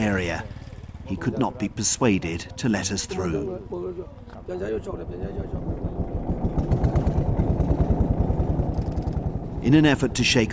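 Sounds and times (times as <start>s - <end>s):
speech: 0.0s - 5.8s, 9.6s - 10.5s
boat motor chugging on a lake: 0.0s - 10.5s.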